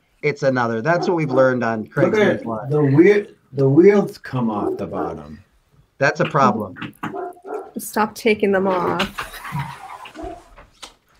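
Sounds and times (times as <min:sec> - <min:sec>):
speech: 0:00.2 - 0:05.4, 0:06.0 - 0:07.2, 0:07.8 - 0:09.8
dog barking: 0:00.9 - 0:01.6, 0:04.5 - 0:05.4, 0:06.3 - 0:07.8.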